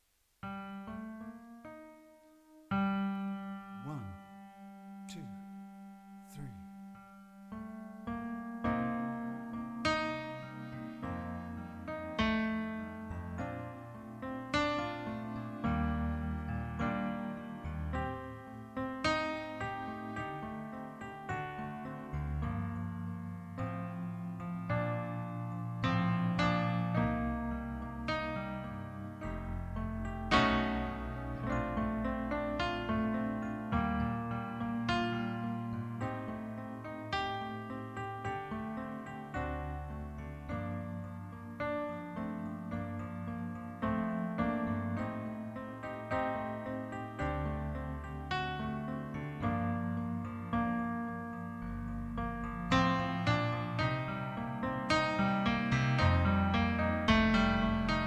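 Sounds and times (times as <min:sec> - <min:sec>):
instrumental ballad: 0:00.4 - 0:58.0.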